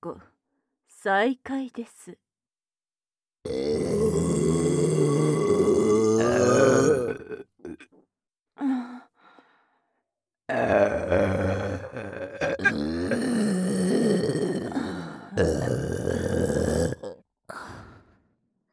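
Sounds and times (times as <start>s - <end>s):
speech: 0.0s - 0.3s, 1.0s - 2.2s
person burping deliberately: 3.5s - 8.0s, 10.5s - 17.2s.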